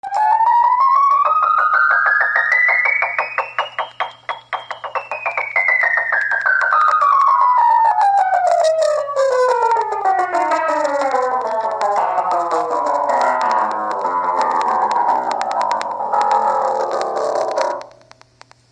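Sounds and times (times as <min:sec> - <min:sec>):
out-of-tune piano: 0:00.0 - 0:18.2.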